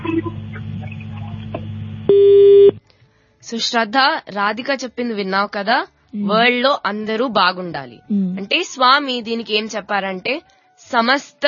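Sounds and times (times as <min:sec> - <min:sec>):
steady electronic telephone tone after call disconnected: 0:02.0 - 0:02.8
telephone line noise after call disconnected: 0:02.1 - 0:02.8
speech: 0:03.5 - 0:11.4.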